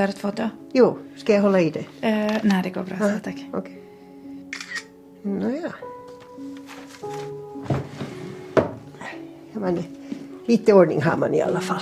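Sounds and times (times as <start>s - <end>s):
speech: 0.0s - 3.8s, 5.2s - 5.9s, 9.6s - 11.8s
wooden dresser drawer full of photographs and postcards opening and shutting: 6.6s - 8.9s.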